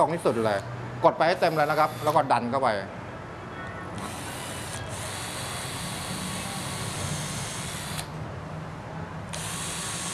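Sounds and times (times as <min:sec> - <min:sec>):
speech: 0:00.0 - 0:03.0
wood drill boring a pilot hole into wood: 0:01.3 - 0:02.2, 0:04.0 - 0:08.1, 0:09.3 - 0:10.1.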